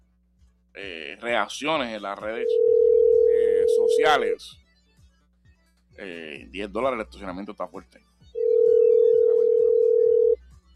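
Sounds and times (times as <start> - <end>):
speech: 0.8 - 2.8, 3.7 - 4.6, 6.0 - 8.1
telephone ringback tone on a call: 2.4 - 4.4, 8.4 - 10.4.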